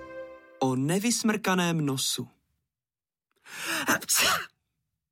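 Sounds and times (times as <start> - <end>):
speech: 0.6 - 2.3, 3.5 - 4.5
person sneezing: 3.6 - 4.6.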